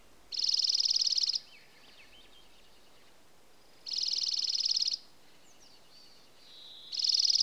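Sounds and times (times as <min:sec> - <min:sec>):
dark-eyed junco song trill in Alaska: 0:00.3 - 0:01.4, 0:03.9 - 0:05.0, 0:06.9 - 0:07.4
faint thin bird calls: 0:00.3 - 0:07.4.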